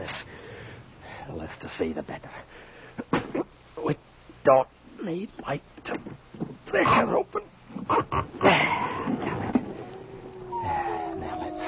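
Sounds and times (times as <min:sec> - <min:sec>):
speech: 0:01.3 - 0:03.1, 0:03.8 - 0:06.0, 0:06.7 - 0:08.7
dogs whimpering and whining: 0:09.0 - 0:11.6.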